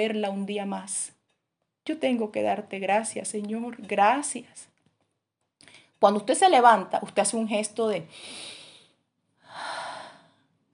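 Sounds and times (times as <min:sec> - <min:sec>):
speech: 0:00.0 - 0:01.2, 0:01.8 - 0:04.7, 0:05.6 - 0:08.6
person taking a deep breath during a prayer: 0:08.1 - 0:10.5.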